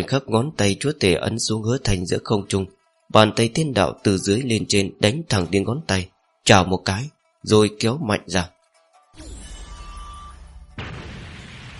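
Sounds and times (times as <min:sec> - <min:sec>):
speech: 0:00.0 - 0:08.6
sharp crash: 0:09.2 - 0:11.7
loud explosion: 0:10.7 - 0:11.7.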